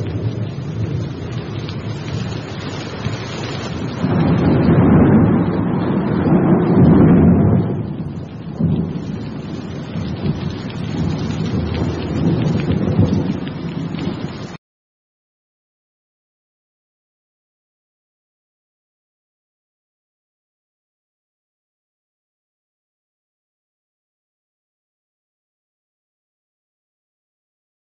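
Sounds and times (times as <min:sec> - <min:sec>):
heavy rain at night: 0:00.0 - 0:14.6
thunder rumbling: 0:00.0 - 0:14.6.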